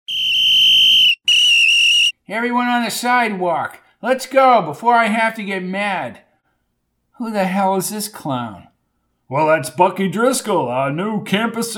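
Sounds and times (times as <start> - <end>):
shrill brass whistle blasts: 0.1 - 2.2
speech: 2.3 - 6.2, 7.2 - 8.7, 9.3 - 11.7.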